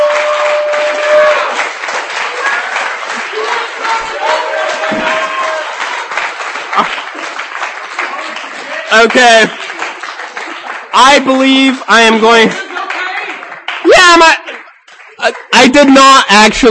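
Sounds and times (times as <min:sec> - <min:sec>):
cheers and whoops: 0:00.0 - 0:06.9
room full of people applauding: 0:00.0 - 0:16.7
speech: 0:09.0 - 0:09.6, 0:11.0 - 0:12.6, 0:14.1 - 0:14.4, 0:15.2 - 0:16.7.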